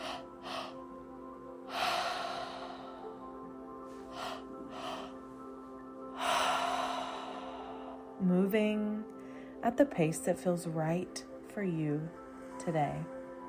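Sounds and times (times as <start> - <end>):
deep forceful breathing during a breathwork session: 0.0 - 1.0, 1.7 - 8.2
steady low tonal drone: 0.0 - 9.4
speech: 8.2 - 13.2.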